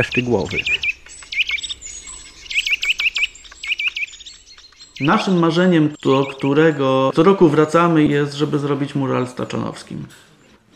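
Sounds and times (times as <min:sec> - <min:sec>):
speech: 0:00.0 - 0:00.8, 0:05.0 - 0:10.7
great spotted woodpecker calling: 0:00.0 - 0:07.3.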